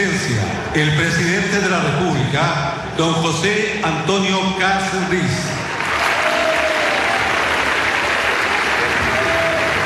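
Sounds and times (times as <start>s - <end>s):
speech: 0.2s - 5.6s
large indoor crowd applauding in a congressional hall: 5.7s - 9.8s.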